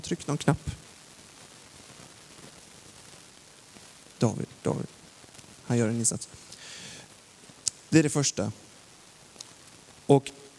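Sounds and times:
speech: 0:00.0 - 0:00.9, 0:04.2 - 0:05.0, 0:05.7 - 0:06.5, 0:07.9 - 0:08.6, 0:10.1 - 0:10.4
steady broadband hiss from loudspeakers: 0:00.0 - 0:10.5.

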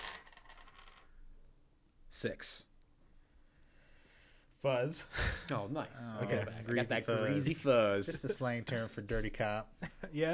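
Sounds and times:
dice clattering across a hard tabletop: 0:00.0 - 0:01.3
speech: 0:02.2 - 0:02.7, 0:04.6 - 0:10.3.

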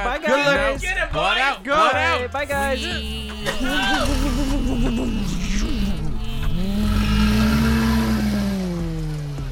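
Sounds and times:
speech: 0:00.0 - 0:05.8
laughter: 0:02.5 - 0:06.1
van engine revving and pulling away: 0:03.3 - 0:09.4.

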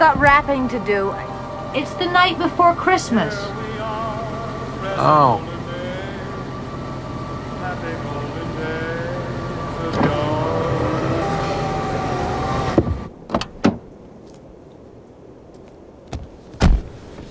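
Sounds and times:
sharp clicks and knocks inside the car: 0:00.0 - 0:00.7, 0:09.9 - 0:13.8
speech: 0:00.0 - 0:03.7, 0:04.9 - 0:05.5
car engine idling then turned off: 0:00.0 - 0:16.0.

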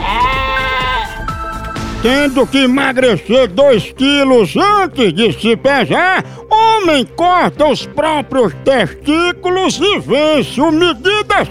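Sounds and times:
goat bleating: 0:00.0 - 0:01.2
speech: 0:02.0 - 0:11.4.

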